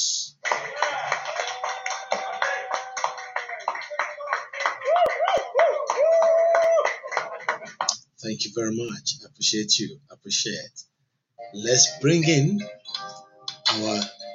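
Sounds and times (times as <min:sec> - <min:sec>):
crowd applauding: 0:00.2 - 0:08.0
voices cheering and whooping: 0:00.5 - 0:07.7
speech: 0:08.2 - 0:10.9, 0:11.5 - 0:12.8, 0:13.8 - 0:14.2.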